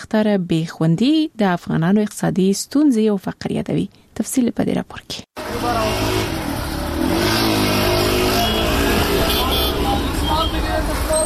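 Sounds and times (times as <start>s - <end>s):
speech: 0.1s - 6.1s
revving vehicles passing on city streets: 5.4s - 11.2s
traffic of cars coming and going on city streets: 5.4s - 11.2s.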